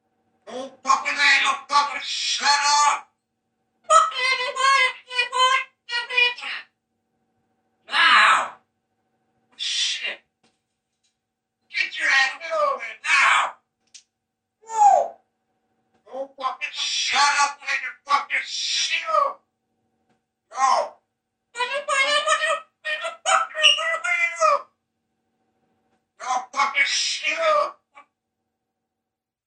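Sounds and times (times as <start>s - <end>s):
parrot mimicking a heated human argument: 0.5s - 3.1s, 3.9s - 6.7s, 7.9s - 8.6s, 9.6s - 10.2s, 11.7s - 13.6s, 14.6s - 15.2s, 16.1s - 19.4s, 20.5s - 21.0s, 21.6s - 24.8s, 26.2s - 28.1s.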